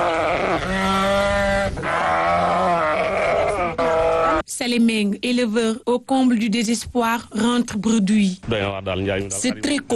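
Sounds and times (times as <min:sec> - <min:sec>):
sheep bleating at a sheep sales point: 0:00.0 - 0:04.4
speech: 0:04.6 - 0:09.9.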